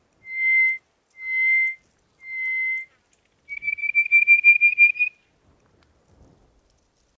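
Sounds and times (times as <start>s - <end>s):
greater hoopoe-lark whistles and rattling run at an oasis in Egypt: 0.0s - 5.2s.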